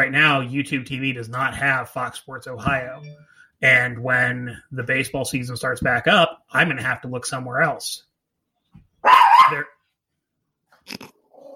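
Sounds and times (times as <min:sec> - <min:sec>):
speech: 0:00.0 - 0:08.1, 0:09.0 - 0:09.7, 0:10.9 - 0:11.1
dog yipping: 0:09.0 - 0:09.7
dog barking: 0:09.0 - 0:09.8.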